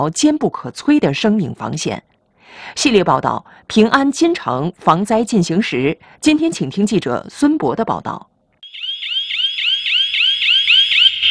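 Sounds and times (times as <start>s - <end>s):
speech: 0.0s - 8.3s
electronic alarm of an aftershock monitoring device during an earthquake rescue drill: 8.6s - 11.2s.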